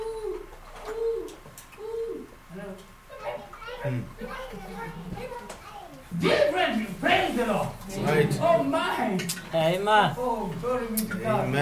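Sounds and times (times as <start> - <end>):
bird giving soft low cooing calls: 0.0 - 5.6
higher chattering voices like children talking: 0.0 - 8.9
speech: 3.8 - 11.6.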